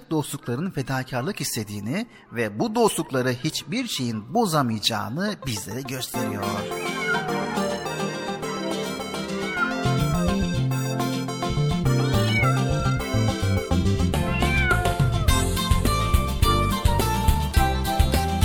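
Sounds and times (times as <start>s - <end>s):
speech: 0.1s - 7.4s
bouncy backing music of a Turkish song: 5.4s - 18.4s
singer imitating cat meows in a song about a kitten: 6.4s - 8.1s, 9.3s - 10.4s, 12.2s - 13.2s, 14.2s - 15.3s.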